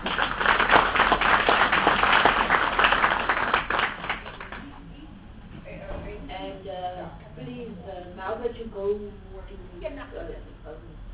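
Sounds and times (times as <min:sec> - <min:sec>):
room of people at a committee meeting applauding a departing civil servant: 0:00.0 - 0:04.8.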